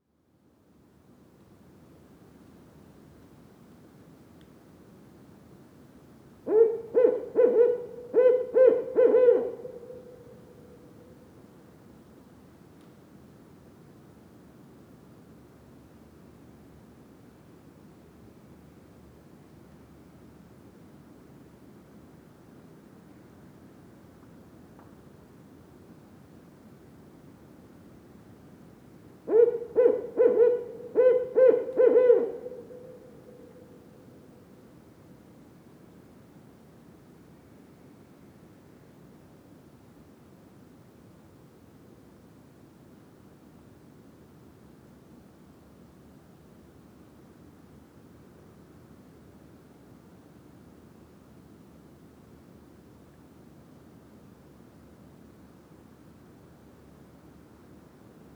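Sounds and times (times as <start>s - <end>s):
barred owl song in Mont Tremblant National Park: 6.5s - 10.6s, 29.3s - 33.7s.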